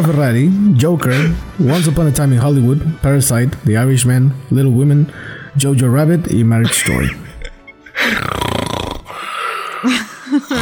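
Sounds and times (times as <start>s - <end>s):
speech: 0.0s - 7.2s, 9.8s - 10.5s
laughter: 6.6s - 8.1s, 9.8s - 10.5s
person snoring: 7.1s - 10.5s.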